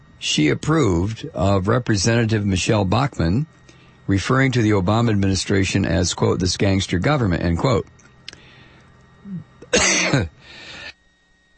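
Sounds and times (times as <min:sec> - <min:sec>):
speech: 0:00.2 - 0:08.0, 0:09.7 - 0:10.6
person coughing harshly: 0:09.3 - 0:10.4.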